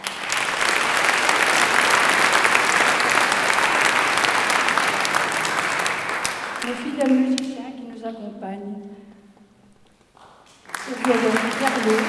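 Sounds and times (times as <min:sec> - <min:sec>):
sizable audience applauding: 0:00.0 - 0:07.5, 0:10.2 - 0:12.0
speech: 0:11.1 - 0:12.0.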